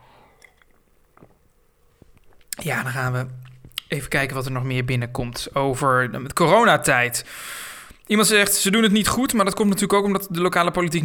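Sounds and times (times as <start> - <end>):
person sipping coffee: 0.0 - 2.6
small wet mouth clicks and swallows: 0.0 - 2.6
speech: 2.6 - 11.0.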